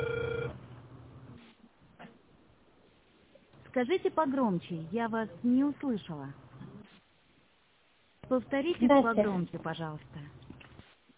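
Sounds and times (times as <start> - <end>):
telephone ringback tone while dialing a call: 0.0 - 0.6
noise: 0.0 - 11.1
speech: 3.8 - 6.4, 8.3 - 10.4.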